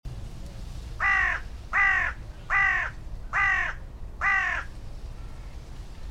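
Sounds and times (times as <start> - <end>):
carrion crow Corvus corone giving harsh hoarse caws: 1.0 - 4.7.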